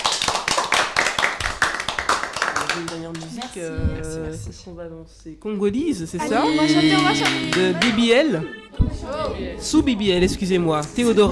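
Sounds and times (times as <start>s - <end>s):
audience applause: 0.0s - 3.6s, 6.5s - 8.2s
speech: 2.8s - 11.3s
laughter: 6.2s - 8.8s.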